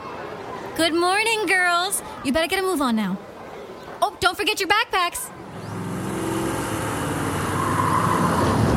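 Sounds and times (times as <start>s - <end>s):
speech: 0.8s - 3.3s, 4.0s - 5.4s
van engine rumbling in a low drone: 5.4s - 8.7s.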